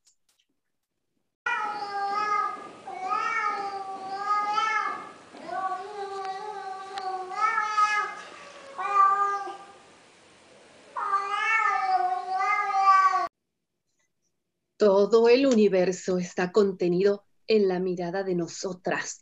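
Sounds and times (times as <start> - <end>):
several cats meowing and yowling in long drawn-out cries: 1.5 - 9.8, 10.9 - 13.3
speech: 15.0 - 19.1.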